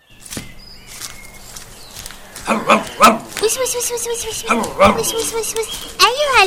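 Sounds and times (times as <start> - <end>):
dog growling: 2.4 - 3.3, 4.4 - 5.5
dog barking: 2.4 - 3.4, 4.4 - 5.8
speech: 2.5 - 6.4.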